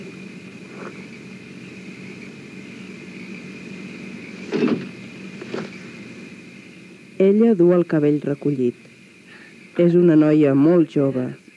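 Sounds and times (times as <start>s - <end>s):
car idling: 0.0s - 7.2s
speech: 7.2s - 8.9s, 9.8s - 11.4s.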